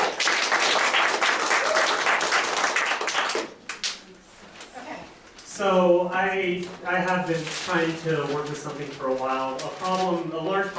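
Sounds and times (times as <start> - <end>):
crowd applauding: 0.0 - 3.8
speech: 5.6 - 10.7.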